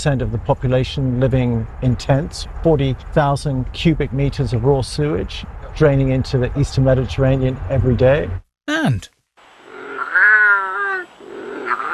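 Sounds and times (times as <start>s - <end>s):
speech: 0.0s - 9.2s
British native wildcat meowing: 9.7s - 11.9s.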